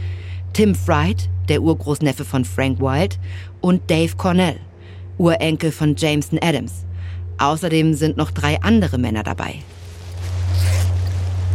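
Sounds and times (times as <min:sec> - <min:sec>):
constant low hum: 0:00.0 - 0:11.5
speech: 0:00.6 - 0:09.8
tent zipper being drawn open: 0:09.6 - 0:11.5.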